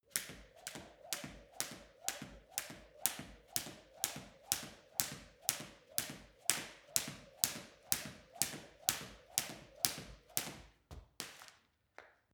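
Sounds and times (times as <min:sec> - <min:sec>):
skipping jump: 0:00.1 - 0:11.6.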